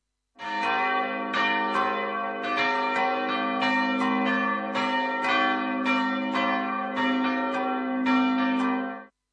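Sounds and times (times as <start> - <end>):
church bells ringing: 0.4 - 9.1.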